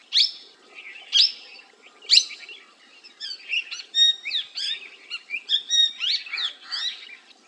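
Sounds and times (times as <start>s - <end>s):
bird calling with sharp rising chirps and high twittering: 0.0s - 7.4s.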